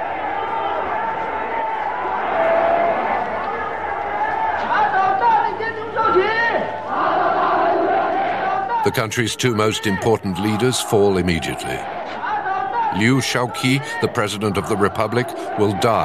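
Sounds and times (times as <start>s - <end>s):
vast crowd roaring and shouting in a large open space: 0.0s - 16.0s
speech: 8.8s - 12.2s, 12.9s - 16.0s.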